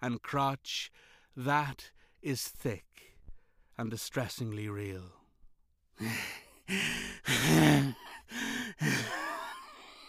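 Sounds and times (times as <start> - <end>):
speech: 0.0 - 3.1, 3.8 - 5.2, 6.0 - 9.2
loud laboured heaving breathing with gasping groans: 6.0 - 10.0.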